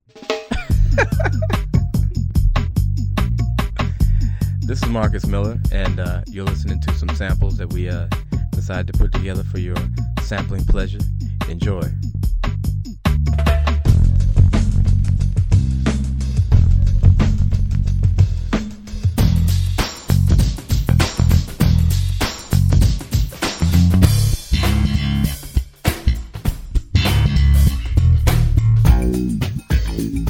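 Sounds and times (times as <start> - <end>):
laughter: 0.5 - 1.6
bass phrases: 0.6 - 23.0, 23.6 - 30.2.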